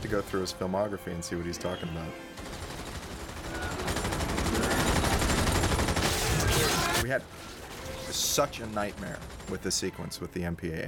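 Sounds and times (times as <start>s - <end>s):
speech: 0.0s - 2.6s, 7.0s - 10.8s
rapid automatic gunfire from a film action sequence: 2.4s - 7.0s.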